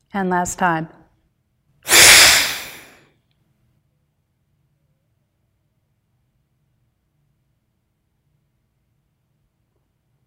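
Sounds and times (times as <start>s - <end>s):
speech: 0.2s - 1.0s
long deep breath during a breathing exercise: 1.9s - 3.1s.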